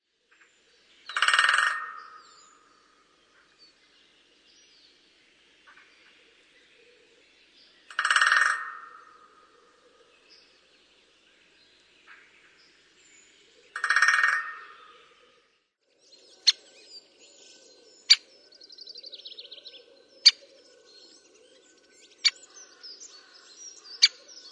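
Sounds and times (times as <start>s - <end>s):
great spotted woodpecker: 1.0s - 3.5s, 7.9s - 10.0s, 13.7s - 15.2s, 21.5s - 24.5s.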